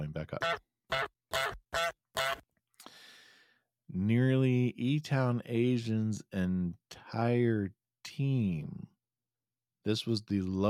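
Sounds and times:
speech: 0:00.1 - 0:00.7, 0:04.0 - 0:08.9, 0:09.8 - 0:10.6
goose honking sound effect: 0:00.4 - 0:02.4.

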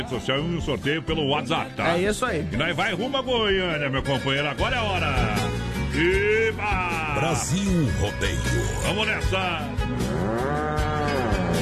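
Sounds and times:
speech: 0:00.0 - 0:10.4
old ox mooing: 0:09.9 - 0:11.6.

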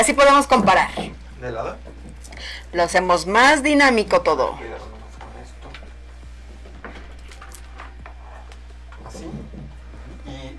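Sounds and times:
speech: 0:00.0 - 0:01.8, 0:02.4 - 0:04.9
wooden chair being moved, knocking and scraping: 0:00.5 - 0:02.2, 0:05.2 - 0:10.5.

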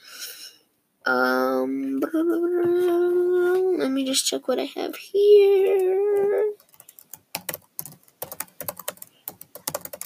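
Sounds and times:
speech: 0:01.1 - 0:03.0, 0:03.8 - 0:05.9
rapid clacking of keys on a computer keyboard: 0:06.2 - 0:10.0.

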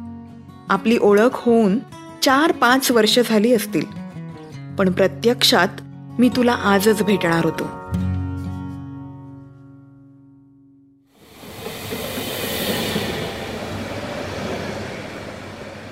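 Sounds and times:
speech: 0:00.7 - 0:04.0, 0:04.8 - 0:07.8
train pulling into a railway station in Mumbai: 0:11.2 - 0:15.9.

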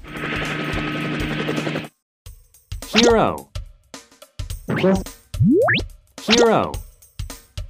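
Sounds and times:
helicopter with turbine whine and rotor thumping: 0:00.0 - 0:02.0
speech: 0:03.0 - 0:03.5, 0:04.7 - 0:06.8.

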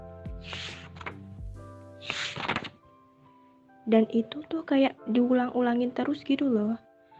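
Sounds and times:
book pages flipping back and forth: 0:00.4 - 0:01.4, 0:02.0 - 0:02.9
speech: 0:03.9 - 0:06.9.

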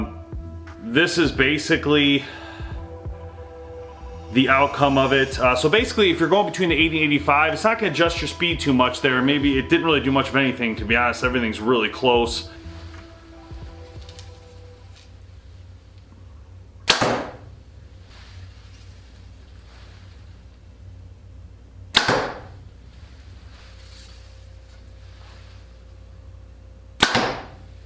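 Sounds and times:
speech: 0:00.8 - 0:02.4, 0:04.3 - 0:12.6
arrows shot from a bow: 0:12.4 - 0:15.2, 0:16.8 - 0:17.5, 0:21.9 - 0:22.6, 0:27.0 - 0:27.7.

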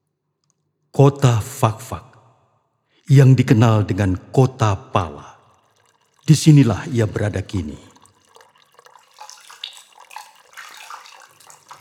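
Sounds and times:
speech: 0:01.0 - 0:02.1, 0:03.1 - 0:05.3, 0:06.3 - 0:07.9
water splashing as someone washes their face: 0:05.0 - 0:11.8.

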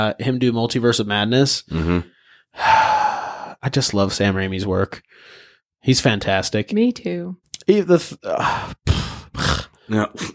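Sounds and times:
speech: 0:00.0 - 0:03.0, 0:03.6 - 0:10.3
ASMR heavy breathing against a microphone with voiced grunts: 0:02.1 - 0:03.6, 0:05.1 - 0:05.7.

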